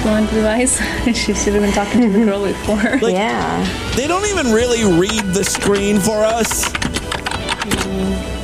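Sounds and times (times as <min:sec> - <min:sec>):
speech: 0:00.1 - 0:06.9, 0:07.7 - 0:08.3
typing on a computer keyboard: 0:04.0 - 0:07.9.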